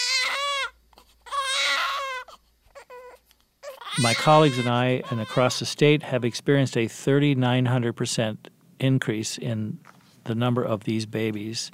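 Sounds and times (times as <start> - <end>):
newborn baby crying: 0.0 - 6.4
speech: 4.0 - 11.7.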